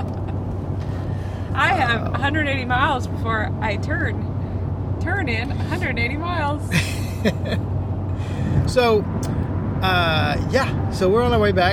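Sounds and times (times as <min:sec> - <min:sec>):
car cabin rumble while driving: 0:00.0 - 0:10.1
speech: 0:01.7 - 0:04.3, 0:05.0 - 0:07.7, 0:08.5 - 0:11.7.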